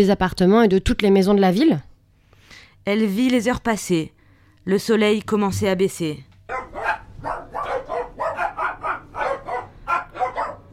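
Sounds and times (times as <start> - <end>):
speech: 0.0 - 1.9, 2.8 - 6.3
dogs barking: 6.5 - 10.7.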